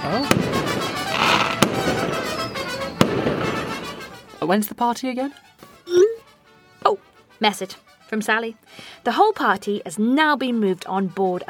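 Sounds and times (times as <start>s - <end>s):
speech: 0.0s - 0.5s, 4.4s - 6.0s, 6.9s - 11.4s
fireworks bangs: 0.0s - 4.3s.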